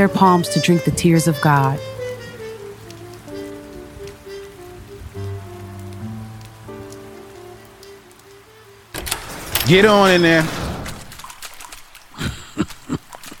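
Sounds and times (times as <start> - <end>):
speech: 0.0 - 1.9, 9.7 - 10.6
sustained low musical tones: 0.0 - 10.2
steady rain pouring in a continuous hiss: 0.0 - 13.3
sudden louder burst of sound: 9.0 - 11.3.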